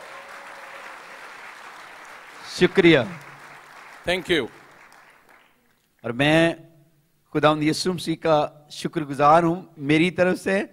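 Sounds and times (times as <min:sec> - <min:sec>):
crowd applauding a dance team: 0:00.0 - 0:05.7
speech: 0:02.5 - 0:03.3, 0:04.0 - 0:04.6, 0:06.0 - 0:06.7, 0:07.3 - 0:10.7.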